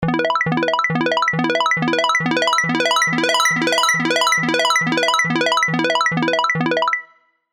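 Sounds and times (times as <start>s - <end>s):
synth loop in E: 0.0s - 7.1s.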